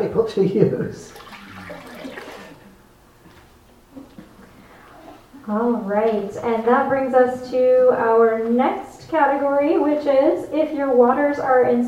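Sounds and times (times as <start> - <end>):
speech: 0.1 - 1.2, 5.5 - 11.8
water pouring out of a canteen: 1.1 - 2.6.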